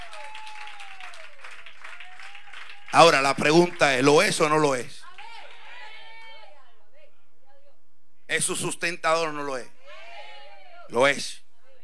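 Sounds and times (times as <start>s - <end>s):
congregation applauding at a church service: 0.0s - 6.4s
speech: 3.0s - 5.0s, 8.4s - 9.8s, 10.9s - 11.4s.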